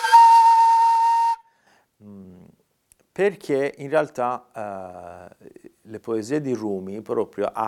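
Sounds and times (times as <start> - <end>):
breathy note on an end-blown flute: 0.0 - 1.8
speech: 3.2 - 7.6.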